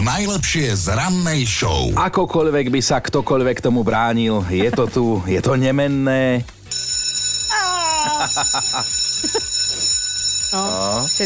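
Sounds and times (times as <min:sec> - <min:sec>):
speech: 0:00.0 - 0:06.6, 0:08.2 - 0:09.6, 0:10.5 - 0:11.2
laughter: 0:04.4 - 0:05.2, 0:07.6 - 0:09.6
shrill school bell ringing on the first day of a new school year: 0:06.7 - 0:11.2.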